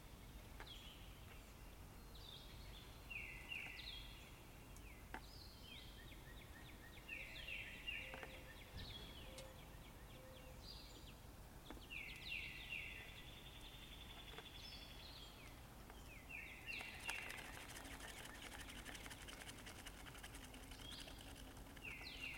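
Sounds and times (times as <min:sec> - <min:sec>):
birds chirping and trilling in a forest: 0:00.1 - 0:22.3.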